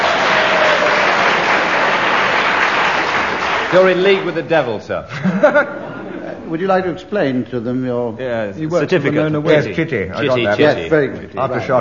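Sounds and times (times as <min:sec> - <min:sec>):
audience applause: 0:00.0 - 0:04.4
speech: 0:03.7 - 0:11.7
laughter: 0:05.1 - 0:06.6.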